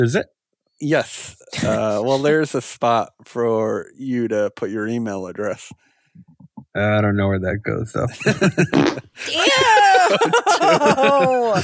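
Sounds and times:
speech: 0.0 - 11.6
laughter: 8.1 - 11.6
drawn-out squeaky fart: 8.7 - 9.1.

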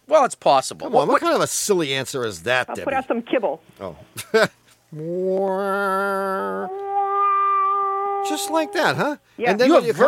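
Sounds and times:
speech: 0.1 - 6.9, 8.2 - 10.0
voice imitating a meowing car noise: 5.0 - 6.8.

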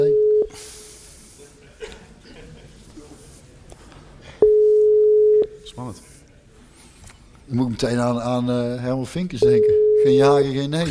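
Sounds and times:
telephone ringback tone during outgoing call: 0.0 - 0.5, 4.4 - 5.5, 9.4 - 10.4
laughter: 1.2 - 3.3
speech: 7.5 - 10.9.

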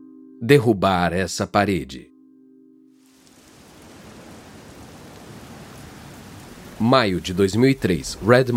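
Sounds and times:
speech: 0.4 - 2.1, 6.8 - 8.5
steady rain in Redmond Washington: 3.0 - 8.5.

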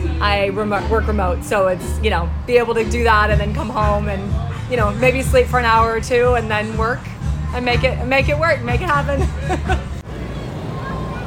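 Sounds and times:
outdoor crowd hubbub outside a stadium in San Diego: 0.0 - 11.2
speech: 0.2 - 9.9
laughter: 8.9 - 10.0.

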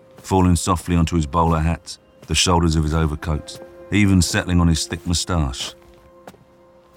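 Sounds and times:
footsteps crunching in snow: 0.0 - 6.9
speech: 0.2 - 5.8.

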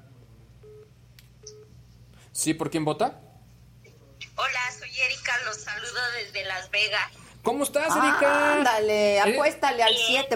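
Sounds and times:
low steady hum: 0.0 - 10.3
speech: 2.3 - 3.3, 5.4 - 10.3
short faint telephone beeps as a call is dialed in: 9.9 - 10.3.

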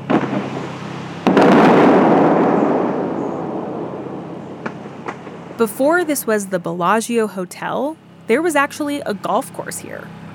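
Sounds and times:
high-powered fountain water shooters firing with a boom: 0.0 - 6.3
speech: 5.6 - 10.2.

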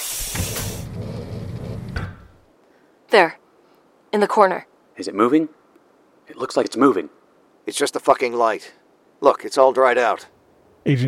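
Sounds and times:
containment cell door opening with mechanical whoosh and hiss: 0.0 - 2.4
speech: 3.1 - 3.4, 4.1 - 5.6, 6.3 - 11.0.

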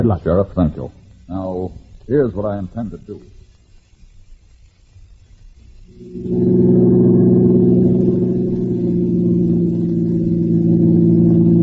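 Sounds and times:
speech: 0.0 - 3.4, 6.0 - 6.8
car engine drone while cruising at an even speed: 5.9 - 11.6.

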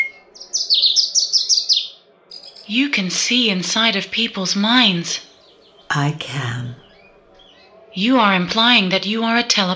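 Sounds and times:
small caged birds chirping: 0.1 - 7.8
speech: 2.7 - 5.3, 5.9 - 6.8, 7.9 - 9.7.

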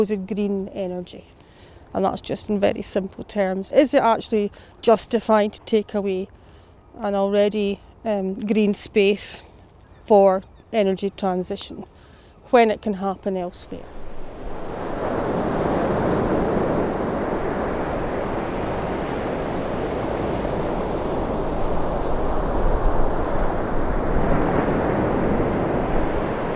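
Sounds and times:
speech: 0.0 - 6.4, 7.0 - 9.5, 10.1 - 14.0
ocean waves breaking on the shore at Aberdeen: 13.6 - 26.5
wind noise: 13.8 - 26.5.

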